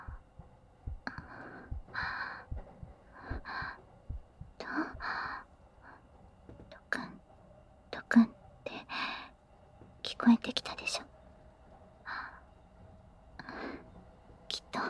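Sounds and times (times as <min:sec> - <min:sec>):
fast heartbeat: 0:00.0 - 0:05.1
soft whispering: 0:01.0 - 0:03.9, 0:04.5 - 0:07.3, 0:07.9 - 0:09.4, 0:10.0 - 0:11.2, 0:12.0 - 0:12.6, 0:13.4 - 0:14.8.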